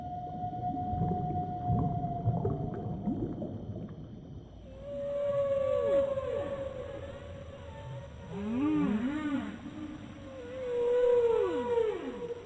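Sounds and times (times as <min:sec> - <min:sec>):
whale song in the ocean: 0:00.0 - 0:03.4, 0:04.6 - 0:12.4
crackling low noise: 0:00.0 - 0:04.7.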